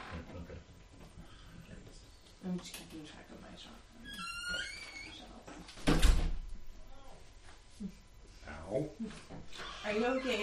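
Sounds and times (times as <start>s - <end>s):
speech: 2.4s - 6.3s, 7.8s - 10.4s
garage door squeaking: 4.0s - 6.4s, 9.5s - 10.4s
garage door shutting with a solid thud: 5.8s - 6.5s.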